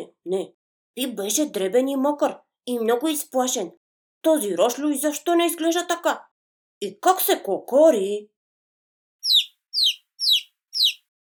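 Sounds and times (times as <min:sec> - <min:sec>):
speech: 0:00.3 - 0:08.3
chick squeaking: 0:09.2 - 0:11.0.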